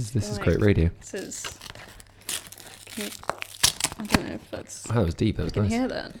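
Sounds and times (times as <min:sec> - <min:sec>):
speech: 0:00.0 - 0:01.7, 0:03.0 - 0:03.4, 0:04.0 - 0:06.1
crinkly packaging being unwrapped: 0:01.0 - 0:04.6.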